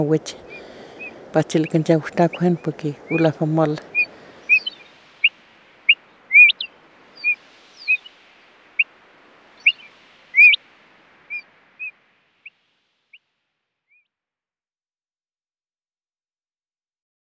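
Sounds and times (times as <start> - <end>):
speech: 0.0 - 0.7, 1.3 - 3.9
fire-eyed diucon calls: 3.1 - 8.2, 9.6 - 10.6, 11.3 - 12.6.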